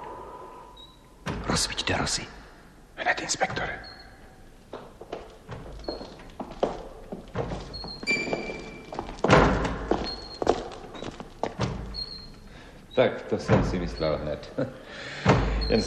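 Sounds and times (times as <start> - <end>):
speech: 1.6 - 2.4, 3.1 - 4.0, 13.0 - 15.8
faint high creaks of a loose door: 3.4 - 14.3, 15.2 - 15.8.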